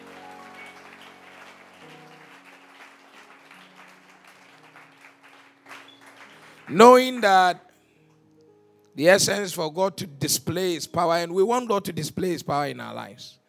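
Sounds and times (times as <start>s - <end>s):
congregation clapping hands in applause: 0.0s - 7.6s
speech: 6.7s - 7.6s, 9.0s - 13.4s.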